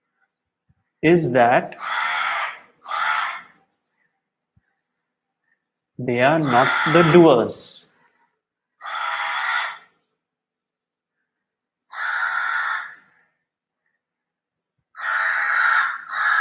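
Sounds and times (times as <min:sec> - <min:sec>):
speech: 0:01.0 - 0:02.0, 0:06.0 - 0:07.9
crow cawing: 0:01.7 - 0:03.6, 0:06.4 - 0:07.4, 0:08.8 - 0:10.0, 0:11.9 - 0:13.4, 0:15.0 - 0:16.3.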